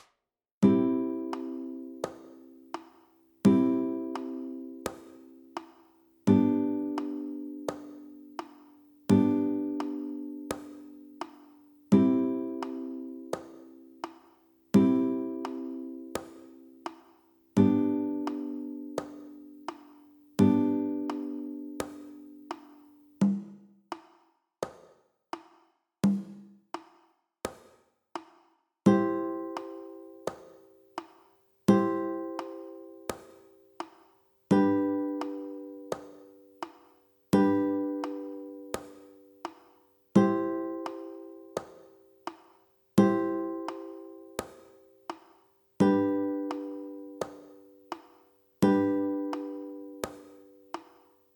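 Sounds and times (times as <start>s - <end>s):
high chord progressions on guitar strings one and three: 0.7s - 2.7s, 3.5s - 5.6s, 6.3s - 11.4s, 11.9s - 13.6s, 14.8s - 16.7s, 17.6s - 22.7s, 28.9s - 30.3s, 31.7s - 33.2s, 34.5s - 36.5s, 37.3s - 39.1s, 40.2s - 41.6s, 43.0s - 44.5s, 45.8s - 47.9s, 48.6s - 50.7s.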